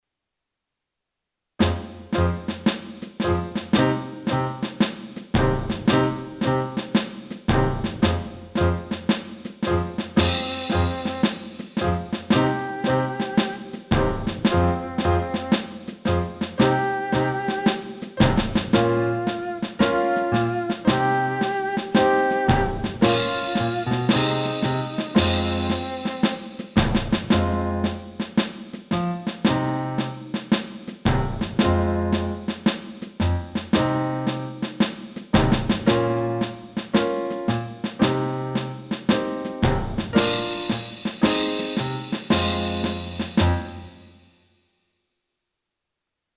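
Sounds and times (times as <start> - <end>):
backing track in E flat: 1.6 - 34.8, 35.4 - 44.0.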